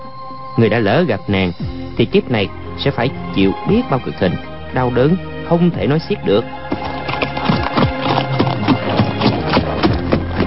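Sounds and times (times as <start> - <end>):
speech: 0.6 - 6.9
horse hooves clip-clopping at a walking pace: 6.5 - 10.4.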